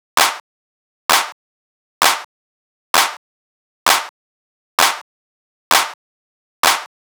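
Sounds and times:
techno clap loop at 130 bpm: 0.2s - 0.4s, 1.1s - 1.4s, 2.0s - 2.3s, 3.0s - 3.2s, 3.9s - 4.1s, 4.8s - 5.0s, 5.7s - 6.0s, 6.6s - 6.9s.

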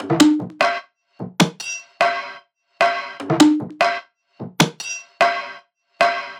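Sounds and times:
experimental percussion drum loop at 150 BPM: 0.0s - 1.8s, 2.9s - 5.4s.

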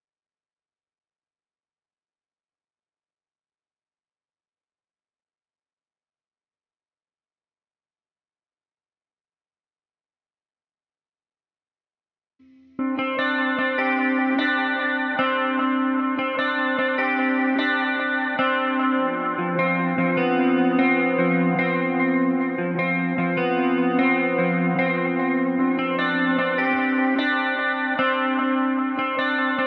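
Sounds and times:
top guitar loop in C major: 12.7s - 29.6s.

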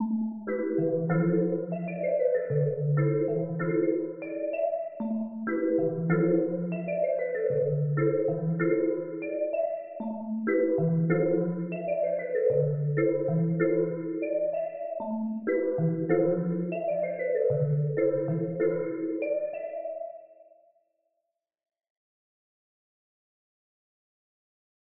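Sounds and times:
plucked melody loop in A minor: 0.0s - 19.9s.

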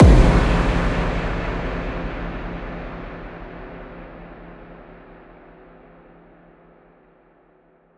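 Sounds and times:
riddim impact explosion one shot: 0.0s - 4.8s.

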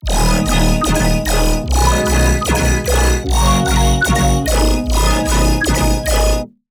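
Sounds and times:
melodic bass hit in D sharp: 0.0s - 6.5s.

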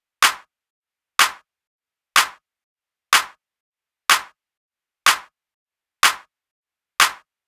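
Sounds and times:
melodic house drum kit clap at 124bpm: 0.2s - 0.4s, 1.2s - 1.4s, 2.2s - 2.4s, 3.2s - 3.4s, 4.1s - 4.3s, 5.1s - 5.3s, 6.0s - 6.2s, 7.0s - 7.2s.

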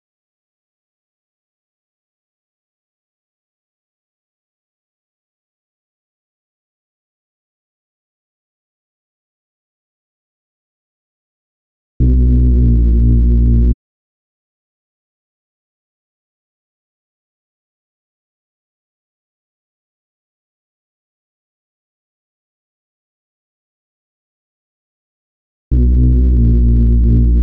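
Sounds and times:
UK garage bass melody loop in D sharp minor: 12.0s - 13.8s, 25.7s - 27.4s.

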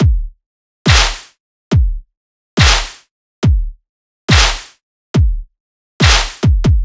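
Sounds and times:
dubstep kick drum loop at 140 BPM: 0.0s - 6.8s
dubstep clap loop at 140 BPM: 0.9s - 1.4s, 2.6s - 3.1s, 4.3s - 4.8s, 6.0s - 6.6s.

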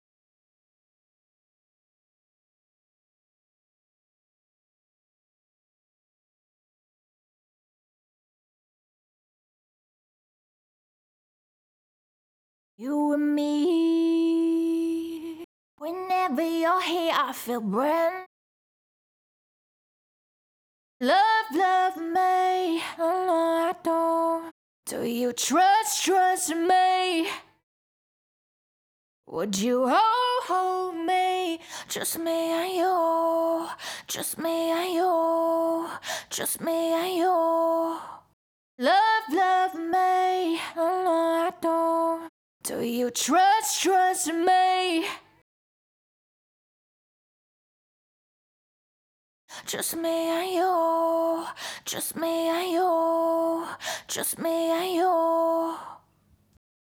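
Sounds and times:
a cappella pop vocals in E minor at 108 BPM: 12.8s - 18.3s, 21.0s - 27.6s, 29.3s - 45.4s, 49.5s - 56.1s.

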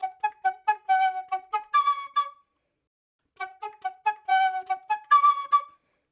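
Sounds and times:
dry flute loop in F sharp minor: 0.0s - 2.4s, 3.4s - 5.7s.

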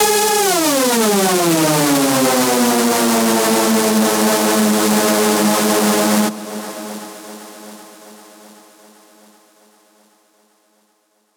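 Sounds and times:
screech music loop in G# minor: 0.0s - 6.3s.

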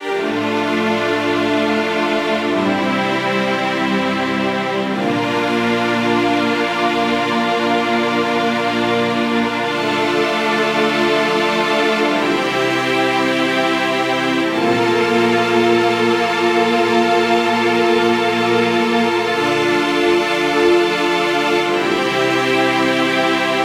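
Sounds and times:
string section harmony in D minor at 100 bpm: 0.0s - 23.6s.

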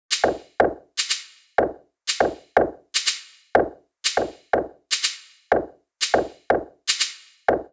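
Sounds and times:
afro house percussion loop with afro drums and kits: 0.1s - 7.7s.

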